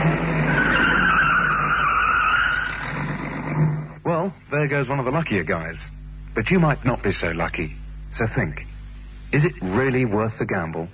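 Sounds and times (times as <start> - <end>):
car engine: 0.0 - 4.0
car tires screeching while braking hard: 0.0 - 4.0
road noise: 0.0 - 4.0
speech: 4.2 - 8.7, 9.3 - 10.9.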